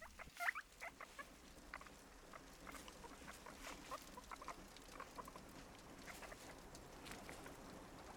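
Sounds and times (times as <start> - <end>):
guinea pigs squealing: 0.0 - 5.4, 6.0 - 6.6
guinea pigs scurrying and scrabbling around hutch: 0.0 - 8.1.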